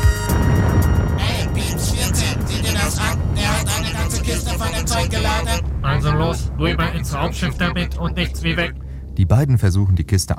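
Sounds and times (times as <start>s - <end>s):
large vehicle engine rumble idling: 0.3s - 10.3s
speech: 6.6s - 10.3s.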